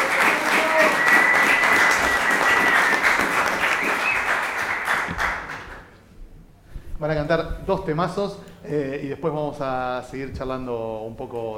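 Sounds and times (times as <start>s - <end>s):
audience applauding a band: 0.0s - 6.0s
speech: 7.3s - 11.5s.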